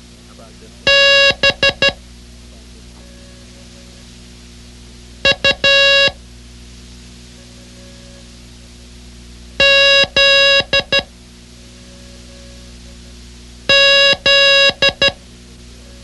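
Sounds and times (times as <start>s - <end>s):
faint steady hum: 0.0s - 16.0s
loud sharp electronic Morse code beeps of short and long lengths: 0.9s - 2.0s, 5.2s - 6.2s, 9.6s - 11.1s, 13.7s - 15.2s.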